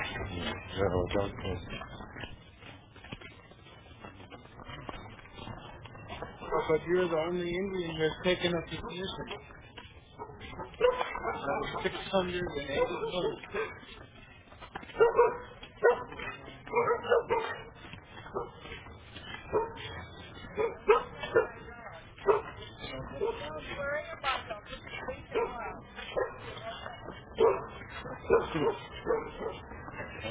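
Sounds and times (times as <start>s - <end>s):
voices murmuring: 0.0s - 2.8s, 3.4s - 14.8s, 15.4s - 30.2s
speech: 0.8s - 1.9s, 6.7s - 9.6s, 10.8s - 14.0s, 15.0s - 16.0s
muzzled dog barking and yipping: 6.3s - 6.9s, 8.5s - 14.0s, 14.8s - 24.0s, 24.8s - 30.2s.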